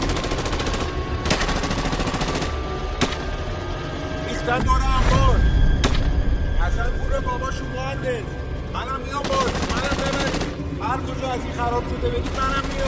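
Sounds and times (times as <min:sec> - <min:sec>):
sharp bursts of gunfire: 0:00.0 - 0:03.3, 0:09.2 - 0:10.6
rumbling background: 0:00.0 - 0:12.8
speech: 0:11.0 - 0:12.8.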